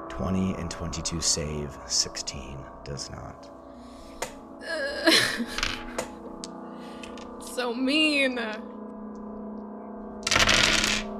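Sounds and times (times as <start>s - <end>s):
steady low hum: 0.0s - 10.2s
speech: 0.2s - 3.6s, 4.6s - 6.2s, 7.6s - 8.7s
handful of dice being rolled: 5.6s - 5.9s, 10.2s - 11.1s.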